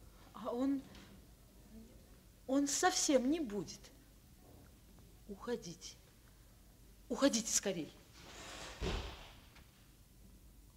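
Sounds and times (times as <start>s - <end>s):
speech: 2.5s - 4.0s, 5.3s - 6.0s, 7.1s - 8.0s, 8.8s - 9.1s
door of a doctor's house slamming shut: 8.7s - 9.5s.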